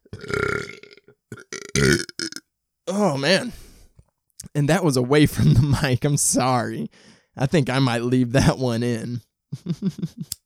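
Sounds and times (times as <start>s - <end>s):
long loud rumbling burp and guttural belches: 0.0s - 3.2s
speech: 3.0s - 3.6s, 4.6s - 10.4s.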